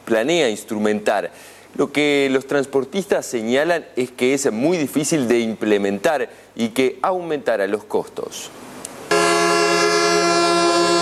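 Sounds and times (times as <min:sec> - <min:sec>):
speech: 0:00.1 - 0:08.7
vehicle horn blaring during a truckers' protest blocking access roads into Montevideo: 0:09.1 - 0:11.0.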